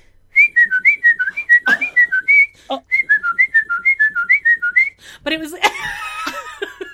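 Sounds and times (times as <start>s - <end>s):
person whistling a guitar solo melody: 0.4s - 5.0s.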